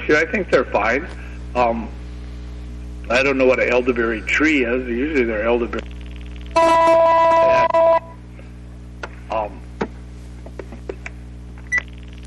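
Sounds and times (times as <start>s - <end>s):
steady low hum: 0.0s - 12.2s
speech: 0.1s - 2.0s, 3.1s - 5.9s, 6.6s - 7.9s, 9.3s - 9.6s
loud electronic telephone tone: 5.8s - 8.2s, 11.7s - 12.2s.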